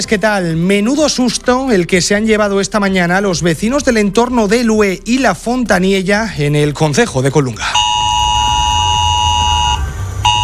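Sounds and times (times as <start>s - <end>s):
speech: 0.0s - 7.9s
mobile phone emergency alert tone: 7.6s - 10.4s.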